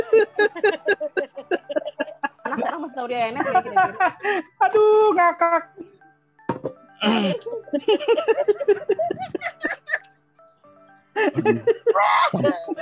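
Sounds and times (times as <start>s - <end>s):
person giggling: 0.0s - 2.7s, 7.0s - 10.1s, 11.2s - 12.8s
person laughing: 0.0s - 2.8s, 7.0s - 10.1s, 11.2s - 12.8s
speech: 3.2s - 5.7s, 7.0s - 9.8s, 11.2s - 12.8s
person coughing: 11.3s - 11.7s.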